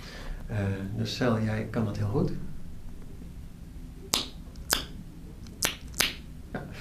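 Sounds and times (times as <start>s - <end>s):
faint hiss: 0.0s - 6.7s
speech: 0.5s - 2.5s
tongue clicks for echolocation: 4.1s - 6.2s.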